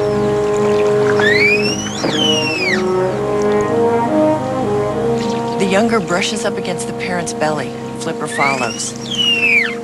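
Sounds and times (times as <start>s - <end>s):
small motorboat engine droning at sea: 0.0s - 9.8s
high gliding whistles: 1.1s - 3.1s, 8.3s - 9.8s
speech: 5.8s - 9.3s.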